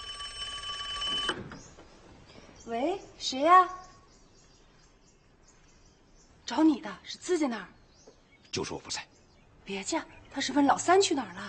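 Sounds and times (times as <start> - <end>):
telephone ringing with an electronic tone: 0.0 - 1.8
speech: 2.7 - 3.8, 6.5 - 7.8, 8.5 - 9.1, 9.7 - 11.4.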